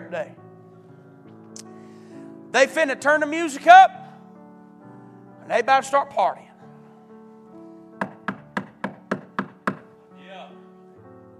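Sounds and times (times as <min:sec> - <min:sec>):
speech: 0:00.1 - 0:00.4, 0:02.5 - 0:04.0, 0:05.5 - 0:06.5
sharp knocks on a door: 0:08.0 - 0:09.9.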